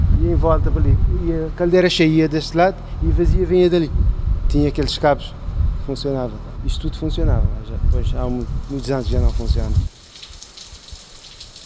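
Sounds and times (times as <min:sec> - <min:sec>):
speech: 0:00.3 - 0:09.9
steady rain pattering on a surface: 0:08.4 - 0:11.6.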